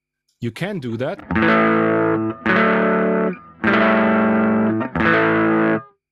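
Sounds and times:
speech: 0.4s - 3.8s
electric guitar chords through a booster pedal and amp: 1.2s - 5.9s.

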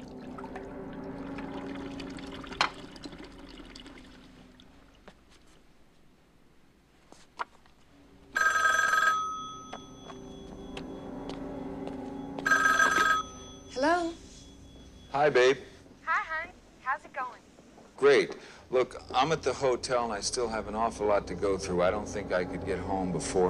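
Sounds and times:
running trickling water: 0.0s - 5.3s
telephone bell ringing: 8.3s - 15.8s
speech: 15.2s - 15.7s, 18.0s - 23.4s.

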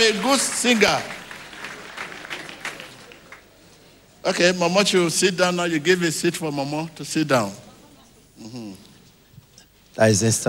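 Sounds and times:
speech: 0.0s - 1.2s, 4.2s - 7.7s, 8.4s - 8.9s, 10.0s - 10.4s
congregation clapping at a church altar service: 0.0s - 4.1s.

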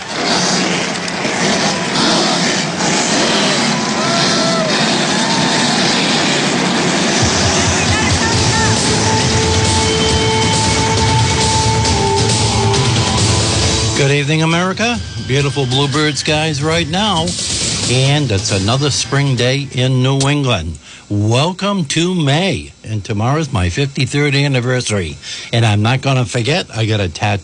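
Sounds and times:
deep low rumble: 0.0s - 20.2s
race car engines starting and revving at a motorsports race in New England: 0.0s - 20.3s
crowd noise at a motorsports race: 0.0s - 20.7s
speech: 14.2s - 27.4s.

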